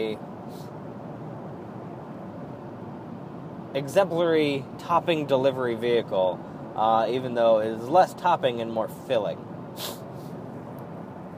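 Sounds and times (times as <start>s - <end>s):
speech: 0.0s - 0.7s, 3.7s - 10.0s
quick airy nasal sniff: 9.8s - 10.3s.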